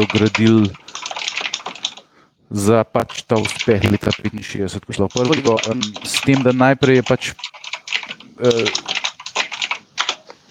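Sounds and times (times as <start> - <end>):
speech: 0.0 - 0.8, 2.5 - 7.7, 8.4 - 8.9
loud typing on a computer keyboard: 0.0 - 2.2, 3.0 - 10.4.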